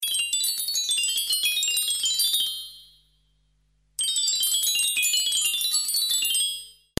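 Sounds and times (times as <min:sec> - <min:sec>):
relaxing chime: 0:00.0 - 0:03.4, 0:04.0 - 0:06.9.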